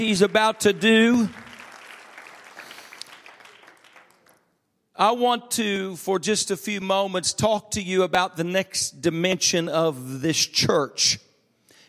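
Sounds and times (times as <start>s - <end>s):
speech: 0.0s - 1.4s, 5.0s - 11.3s
audience applause: 0.0s - 4.4s.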